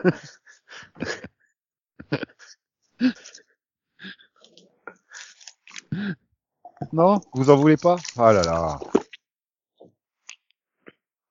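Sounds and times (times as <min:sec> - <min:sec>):
speech: 0:00.0 - 0:01.2, 0:07.0 - 0:09.0
laughter: 0:00.0 - 0:01.4, 0:02.0 - 0:02.6
person swallowing a drink: 0:04.4 - 0:09.2.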